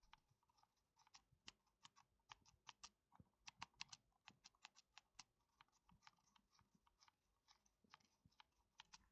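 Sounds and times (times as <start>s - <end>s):
joystick: 0.0s - 9.0s.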